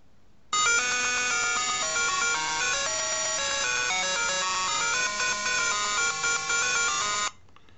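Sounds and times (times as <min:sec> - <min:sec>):
buzzy synthesized laser-beam ringtone from an early-1980s video game: 0:00.6 - 0:07.3.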